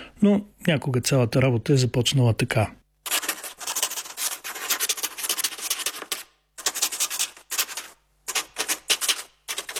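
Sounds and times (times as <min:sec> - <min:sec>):
speech: 0:00.2 - 0:02.8
duck-feather quill pen scratching across paper: 0:03.0 - 0:09.7.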